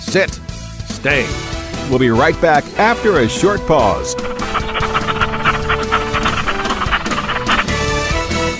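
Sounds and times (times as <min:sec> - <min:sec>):
speech: 0:00.1 - 0:00.5, 0:01.1 - 0:05.1
dog panting: 0:03.4 - 0:08.4.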